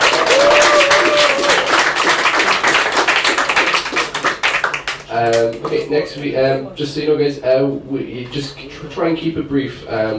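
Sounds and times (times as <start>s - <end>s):
audience applauding after an experimental act: 0.0s - 5.8s
speech: 5.8s - 10.1s.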